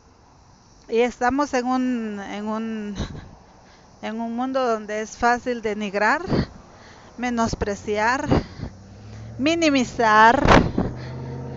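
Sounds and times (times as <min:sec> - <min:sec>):
speech: 0:00.9 - 0:03.3, 0:04.0 - 0:06.5, 0:07.2 - 0:08.5, 0:09.4 - 0:10.6
cars idling or passing: 0:06.5 - 0:11.5
sharp bursts of car engine noise: 0:07.6 - 0:11.5
low rumbling drone: 0:08.4 - 0:11.5.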